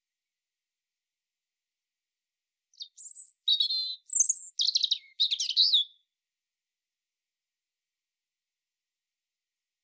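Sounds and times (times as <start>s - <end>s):
European robin Erithacus rubecula singing: 2.8s - 6.1s.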